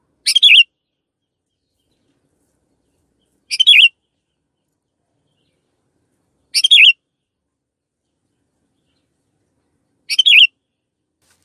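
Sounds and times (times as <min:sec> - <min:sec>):
canary twittering: 0:00.2 - 0:00.7, 0:03.5 - 0:03.9, 0:06.5 - 0:07.0, 0:10.1 - 0:10.5.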